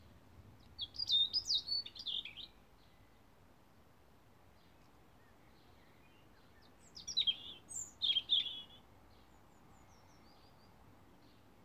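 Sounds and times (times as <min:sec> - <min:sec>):
European robin singing warbling phrases: 0:00.8 - 0:03.1, 0:05.8 - 0:08.8.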